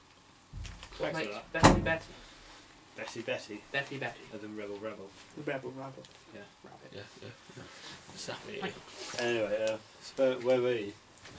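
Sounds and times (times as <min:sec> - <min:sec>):
speech: 0:01.0 - 0:02.3, 0:03.0 - 0:11.3
door pushed shut with a dull thump: 0:01.5 - 0:02.1.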